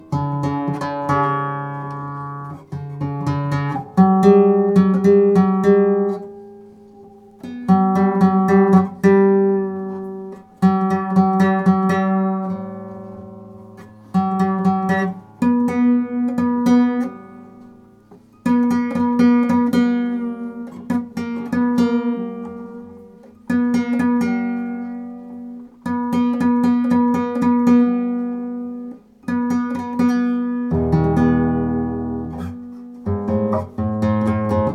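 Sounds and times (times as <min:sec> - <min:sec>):
classical guitar tuning: 0:00.0 - 0:34.7.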